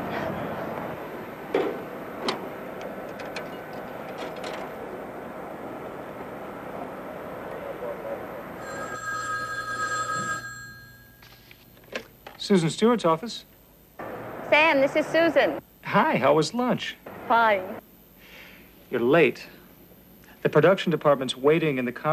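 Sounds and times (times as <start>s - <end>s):
sharp clicks and handling noises of placing a phone call: 1.6s - 4.8s
telephone ringing with a bright buzzy tone: 8.5s - 11.6s
speech: 12.5s - 13.5s, 14.8s - 17.8s, 18.9s - 19.6s, 20.4s - 22.1s.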